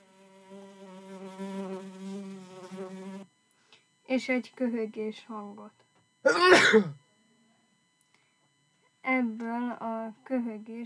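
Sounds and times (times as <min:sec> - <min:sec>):
insect buzzing: 0:00.0 - 0:03.4
speech: 0:04.1 - 0:07.0, 0:10.1 - 0:10.8.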